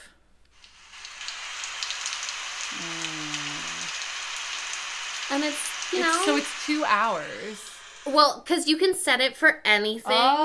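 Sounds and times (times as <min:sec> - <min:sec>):
recorded heavy rain from a sleep sound app: 0:00.6 - 0:08.4
speech: 0:05.3 - 0:10.4.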